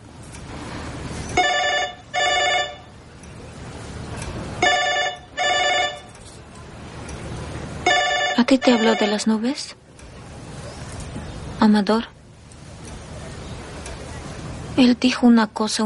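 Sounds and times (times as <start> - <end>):
low steady hum: 0.0 - 15.8
telephone ringing in electronic trills: 1.3 - 3.0, 4.6 - 6.1, 7.8 - 9.5
speech: 8.5 - 9.8, 11.6 - 12.1, 14.8 - 15.8.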